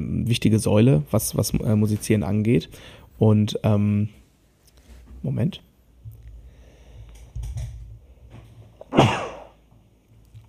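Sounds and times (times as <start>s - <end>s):
speech: 0.3s - 4.2s, 5.2s - 5.7s
person sneezing: 8.8s - 9.6s.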